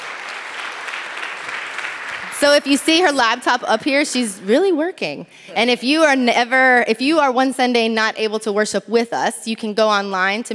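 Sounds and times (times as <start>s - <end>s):
church service audience applause: 0.0s - 3.4s
speech: 2.4s - 10.5s.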